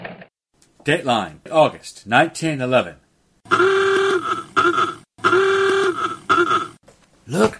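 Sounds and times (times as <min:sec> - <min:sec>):
speech: 0:00.9 - 0:03.9, 0:07.3 - 0:07.5
horn of an early 1911 motor car honking: 0:03.5 - 0:06.8.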